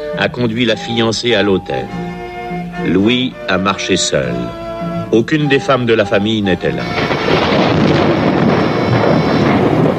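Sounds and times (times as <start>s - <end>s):
speech: 0.1s - 2.1s, 2.8s - 7.5s
loud thunderclap rumbling: 6.8s - 9.9s.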